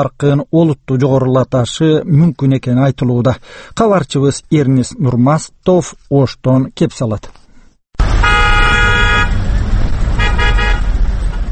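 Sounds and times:
speech: 0:00.0 - 0:07.4
car horns honking in a queue at a fuel station in Osh during a fuel shortage: 0:08.0 - 0:11.4
idling vehicle engines and traffic rumble at a fuel station in Osh: 0:08.0 - 0:11.4.

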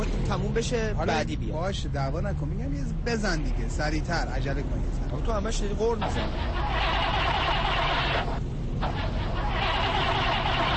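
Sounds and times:
speech: 0:00.3 - 0:07.2
car engine with oil in fuel tank cranking but failing to start: 0:05.5 - 0:10.7.

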